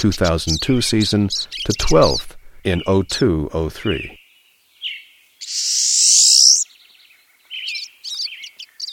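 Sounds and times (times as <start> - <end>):
pine siskin calling: 0.0 - 3.1, 4.8 - 6.8, 7.5 - 8.9
speech: 0.0 - 4.2
pine siskin rising buzzy zreee call: 5.4 - 6.6.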